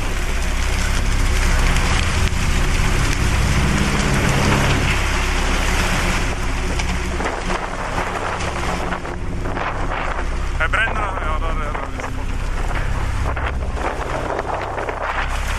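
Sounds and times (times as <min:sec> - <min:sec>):
strong gusting wind buffeting the microphone: 0:00.0 - 0:15.5
voice: 0:10.6 - 0:12.2.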